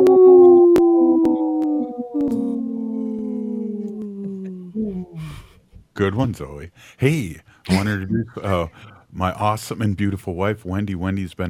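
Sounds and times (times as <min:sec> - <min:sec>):
human voice imitating a long loud wolf-like howl: 0:00.0 - 0:05.4
speech: 0:06.0 - 0:11.4.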